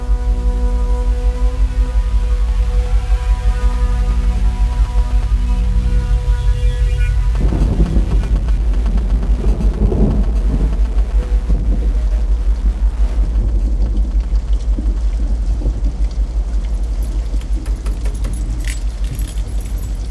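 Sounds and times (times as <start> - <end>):
heavy rain: 0.0 - 17.7
deep low rumble of thunder: 0.0 - 17.8
faint metallic clinking: 16.8 - 20.0.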